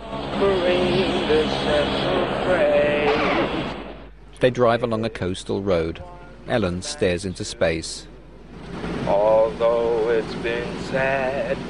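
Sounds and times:
six-seater plane engine droning while flying low near a runway: 0:00.0 - 0:04.2, 0:08.4 - 0:11.6
speech: 0:00.4 - 0:02.8, 0:04.4 - 0:11.6.

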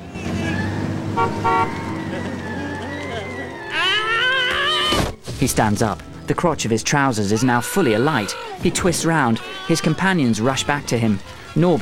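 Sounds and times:
police car engine humming as it pulls away: 0:00.0 - 0:11.8
wavering siren-like wail: 0:00.2 - 0:05.0
police car horn toot: 0:01.1 - 0:02.0
speech: 0:01.2 - 0:02.3, 0:05.4 - 0:11.8
laughter: 0:01.6 - 0:04.9, 0:07.8 - 0:11.8.

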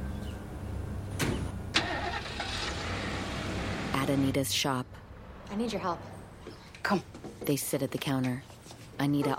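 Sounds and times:
pickup truck engine starting and running: 0:00.2 - 0:04.5
sharp clunks: 0:01.2 - 0:01.5
speech: 0:04.1 - 0:06.1, 0:06.8 - 0:09.3.

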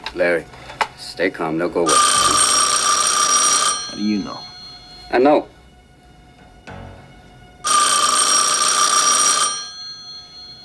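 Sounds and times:
speech: 0:00.1 - 0:02.2, 0:04.0 - 0:04.5, 0:05.1 - 0:05.5
loud bright telephone bell ringing: 0:01.9 - 0:05.5, 0:07.6 - 0:10.6.

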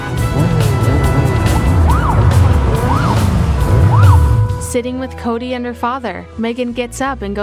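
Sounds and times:
police car engine roaring while speeding: 0:00.0 - 0:04.8
police car siren wailing: 0:00.2 - 0:04.6
speech: 0:04.8 - 0:07.4.

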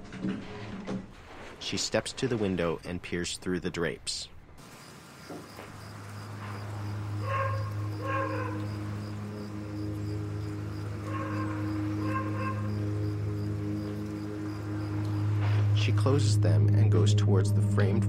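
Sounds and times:
speech: 0:01.6 - 0:04.3, 0:16.0 - 0:18.0
dogs barking in short yaps: 0:06.0 - 0:15.2.

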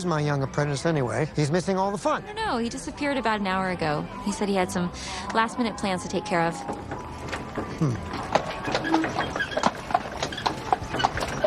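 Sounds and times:
speech: 0:00.0 - 0:07.0, 0:07.8 - 0:08.3
indistinct voices murmuring: 0:00.0 - 0:11.4
horse-drawn carriage hooves clip-clopping at a walk: 0:05.2 - 0:11.4.

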